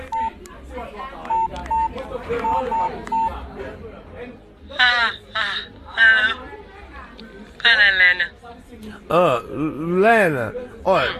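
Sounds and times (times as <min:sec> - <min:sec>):
touch-tone beeps of a telephone number being keyed in: 0:00.0 - 0:00.4, 0:01.3 - 0:03.4
low murmur of voices: 0:00.0 - 0:11.1
speech: 0:09.1 - 0:11.1.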